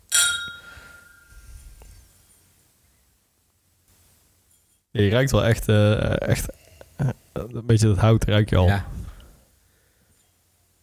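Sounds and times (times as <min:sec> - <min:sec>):
quiet low noise: 0:00.0 - 0:10.8
two glasses clinking in a toast: 0:00.1 - 0:01.3
speech: 0:05.0 - 0:06.6, 0:07.5 - 0:09.0.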